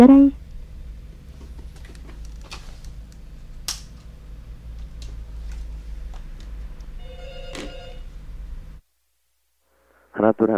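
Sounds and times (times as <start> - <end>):
speech: 0.0 - 0.4
low steady hum: 0.0 - 9.2
telephone ringing in a short electronic burst: 7.0 - 8.2.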